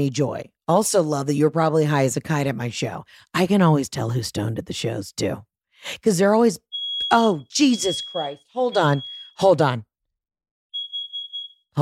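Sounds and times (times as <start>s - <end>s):
speech: 0.0s - 9.9s
smoke alarm beeping during testing: 6.7s - 9.8s, 10.8s - 11.7s.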